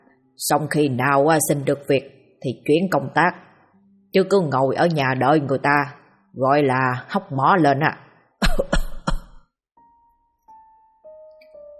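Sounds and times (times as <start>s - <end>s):
speech: 0.4s - 3.5s, 4.1s - 8.0s
person coughing after choking on saliva: 8.4s - 9.5s.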